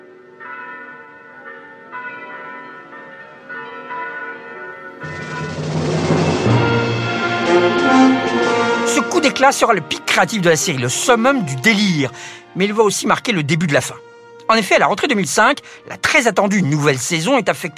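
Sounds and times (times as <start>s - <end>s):
royal wedding bells ringing in a full peal: 0.0s - 13.2s
speech: 9.2s - 17.7s.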